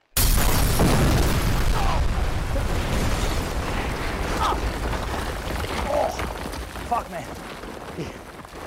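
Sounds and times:
fireworks with rocket sticks removed detonating in a plastic bucket coated with epoxy: 0:00.0 - 0:05.4
sustained roaring crackling rumble of fireworks: 0:00.5 - 0:08.6.

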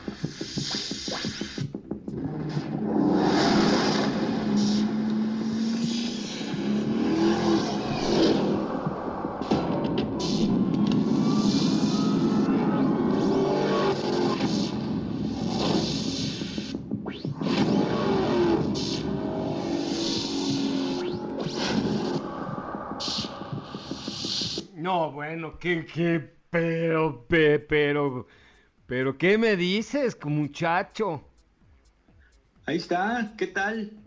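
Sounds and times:
car engine revving: 0:00.2 - 0:24.6
speech: 0:25.4 - 0:31.3, 0:32.7 - 0:34.0.

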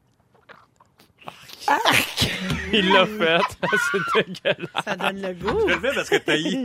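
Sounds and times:
mouth imitation of squeezing a fresh grapefruit: 0:00.1 - 0:02.3
speech: 0:01.7 - 0:06.6
laughter: 0:01.9 - 0:06.6.

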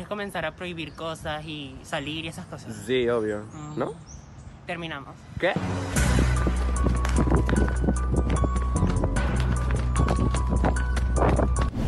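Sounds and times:
speech: 0:00.0 - 0:06.0
hurried running footsteps: 0:06.0 - 0:11.8.

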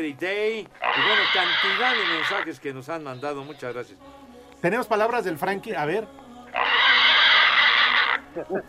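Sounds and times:
speech: 0:00.0 - 0:06.8, 0:08.4 - 0:08.6
Mexican hairless pig squealing: 0:00.8 - 0:03.7, 0:06.5 - 0:08.5.

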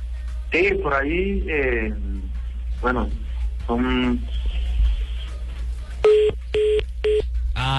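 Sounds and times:
steady low hum on a call line: 0:00.0 - 0:07.7
speech: 0:00.5 - 0:02.1, 0:02.8 - 0:04.6, 0:06.3 - 0:07.7
payphone warning beeps as call credit runs out: 0:06.0 - 0:07.2.

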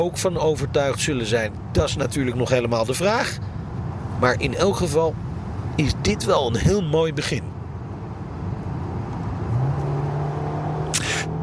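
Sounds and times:
speech: 0:00.0 - 0:03.6, 0:04.2 - 0:05.2, 0:05.8 - 0:07.5
road rumble: 0:00.0 - 0:11.4
Peugeot 508 SW station wagon engine droning: 0:03.4 - 0:11.4
sharp click: 0:10.9 - 0:11.3.

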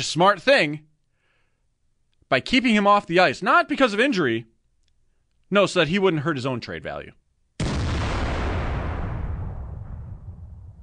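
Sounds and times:
speech: 0:00.0 - 0:00.9, 0:02.3 - 0:04.5, 0:05.5 - 0:07.2
cannon blast: 0:07.6 - 0:10.8.

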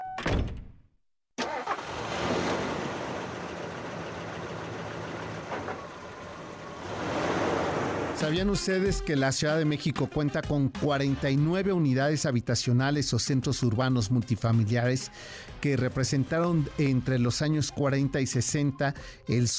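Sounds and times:
thunk: 0:00.2 - 0:00.8
car starter whining and cranking: 0:01.4 - 0:06.2
engine roaring to life and running: 0:01.5 - 0:08.2
speech: 0:08.2 - 0:19.5.

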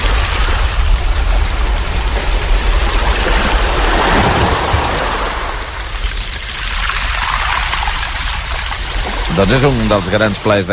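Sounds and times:
sea waves washing onto a beach: 0:00.0 - 0:10.7
speech: 0:09.4 - 0:10.7.

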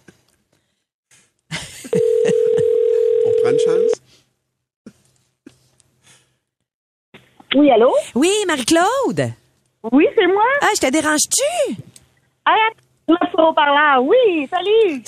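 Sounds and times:
ringback tone on an outgoing telephone call: 0:01.9 - 0:04.0
speech: 0:07.6 - 0:11.8, 0:12.5 - 0:15.0.

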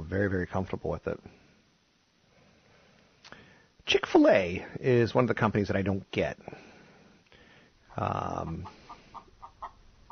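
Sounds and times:
speech: 0:00.1 - 0:01.4, 0:03.9 - 0:06.7, 0:08.0 - 0:08.8
chicken squawking: 0:08.2 - 0:10.1.

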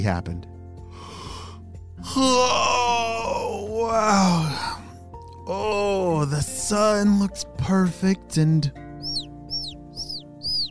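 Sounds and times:
speech: 0:00.0 - 0:00.5, 0:02.0 - 0:04.6, 0:05.5 - 0:08.8
baby birds chirping outside: 0:08.6 - 0:10.7.

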